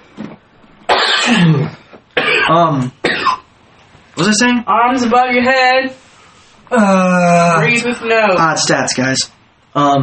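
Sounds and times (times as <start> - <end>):
harsh raspy coughing fit: 0.9 - 3.5
speech: 1.3 - 3.0, 4.2 - 6.0, 6.7 - 10.0.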